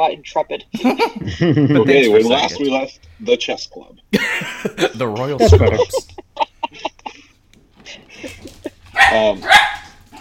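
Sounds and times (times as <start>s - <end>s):
speech: 0.0s - 6.2s, 9.1s - 9.7s
laughter: 0.8s - 2.7s, 4.1s - 9.0s
dog barking: 8.9s - 10.2s.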